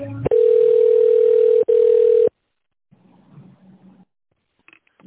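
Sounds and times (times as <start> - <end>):
chime-like telephone line tones while a call is transferred: 0.3 - 2.3.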